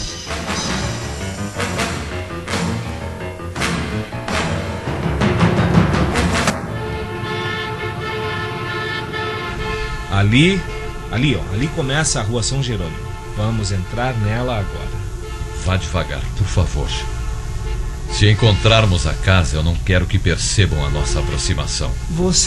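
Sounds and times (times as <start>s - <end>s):
car engine revving while pulling away: 0.0s - 22.4s
car horn honking: 6.1s - 22.2s
speech: 10.2s - 15.0s, 15.6s - 17.2s, 18.1s - 22.4s.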